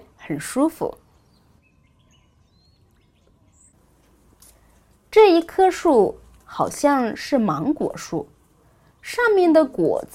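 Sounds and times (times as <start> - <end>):
speech: 0.3 - 1.0, 5.2 - 8.3, 9.0 - 10.1
birds chirping and whistling outdoors: 0.3 - 4.0.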